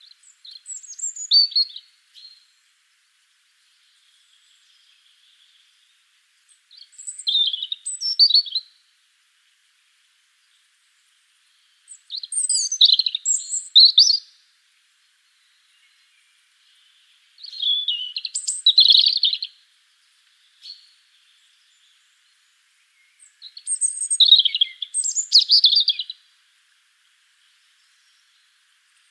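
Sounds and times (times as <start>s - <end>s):
European robin Erithacus rubecula singing: 0.0s - 2.7s, 3.5s - 8.8s, 10.4s - 14.4s, 15.2s - 26.3s.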